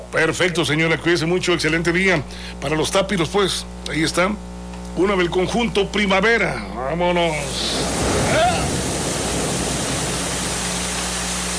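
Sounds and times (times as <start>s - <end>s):
speech: 0.1s - 8.1s
voice-like sound: 7.3s - 8.8s
rushing water: 7.4s - 11.5s.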